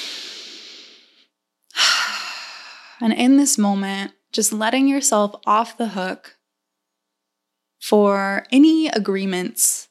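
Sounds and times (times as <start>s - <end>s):
deep breath in during a guided relaxation exercise: 0.0s - 3.0s
speech: 3.0s - 6.4s, 7.8s - 9.8s.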